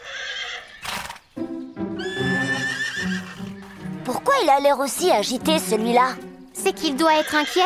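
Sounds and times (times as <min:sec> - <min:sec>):
wild horse neighing: 0:00.0 - 0:01.2, 0:02.0 - 0:03.9
horse hooves clopping: 0:02.0 - 0:07.6
speech: 0:04.4 - 0:07.6.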